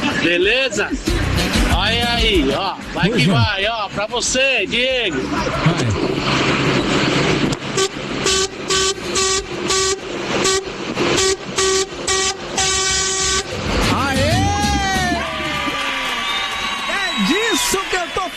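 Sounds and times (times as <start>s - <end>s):
steady road rumble: 0.0s - 18.3s
speech: 0.2s - 6.6s
semi-trailer truck horn honking on a truck loaded with toilet paper: 7.6s - 15.1s.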